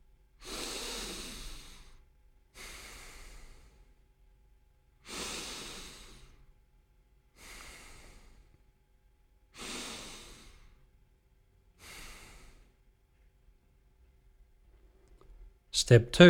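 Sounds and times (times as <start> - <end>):
breathing in and out through the nose: 0.4 - 2.0, 2.6 - 3.9, 5.0 - 6.5, 7.4 - 8.6, 9.5 - 10.9, 11.8 - 12.8
speech: 15.8 - 16.2.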